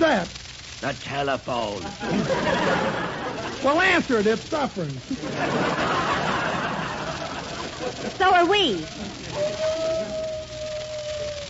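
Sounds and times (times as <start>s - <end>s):
low hiss: 0.0s - 11.4s
speech: 0.1s - 6.1s, 7.8s - 10.4s
laughter: 1.8s - 4.3s, 5.0s - 11.4s
wolf-like howling call: 9.3s - 11.4s.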